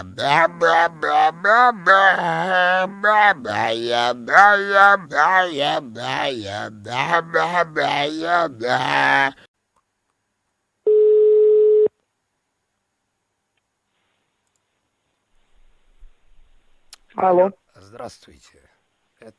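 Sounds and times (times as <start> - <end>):
speech: 0.0 - 9.5, 17.2 - 18.6
telephone tone while placing a call: 10.9 - 11.9.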